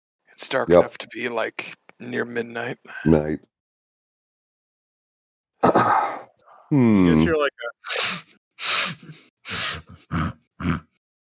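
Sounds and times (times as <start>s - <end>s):
speech: 0.4s - 3.5s, 5.6s - 10.8s
rough congested animal grunts with snorting at night near a boulder at a camp: 9.5s - 11.0s.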